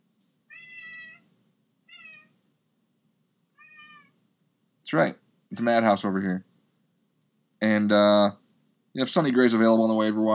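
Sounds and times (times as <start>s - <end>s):
cat meowing: 0.5s - 2.4s, 3.6s - 4.2s
speech: 4.9s - 6.5s, 7.6s - 8.4s, 9.0s - 10.3s.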